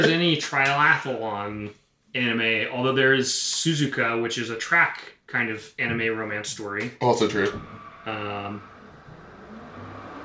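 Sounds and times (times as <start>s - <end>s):
speech: 0.0s - 8.7s
car driving past outside: 7.2s - 10.2s.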